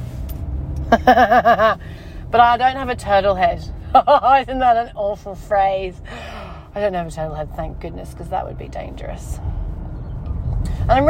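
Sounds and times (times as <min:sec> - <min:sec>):
car engine and road rumble heard from inside the vehicle slowing to a stop: 0:00.0 - 0:11.0
speech: 0:00.9 - 0:09.6, 0:10.9 - 0:11.0.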